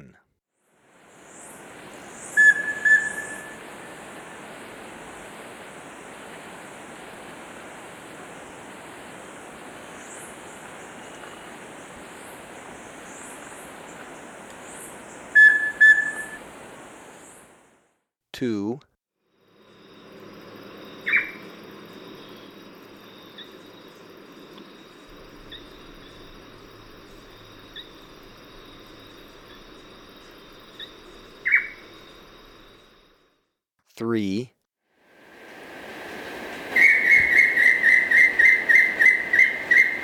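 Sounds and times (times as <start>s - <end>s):
Rufous-breasted Antthrush calling in South America: 1.1s - 17.6s, 21.0s - 22.6s, 24.9s - 32.2s, 35.2s - 40.0s.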